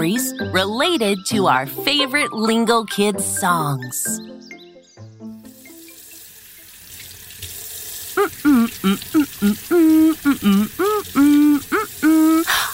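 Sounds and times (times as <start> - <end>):
speech: 0.0 - 4.6, 8.2 - 12.7
tap water running at a sink while hands are washed: 5.4 - 12.7
voice in short tonal bursts: 8.2 - 12.7.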